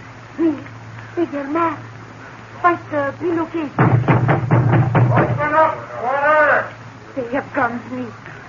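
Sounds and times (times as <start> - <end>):
voices speaking: 0.4 - 3.9, 5.1 - 8.4
urgent pounding on a door: 3.8 - 5.5.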